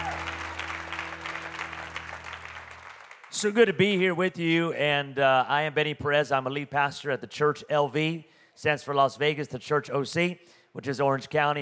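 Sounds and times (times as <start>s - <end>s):
low sustained hum from an organ or keyboard pad: 0.0s - 3.0s
crowd clapping: 0.0s - 3.8s
speech: 3.4s - 11.6s.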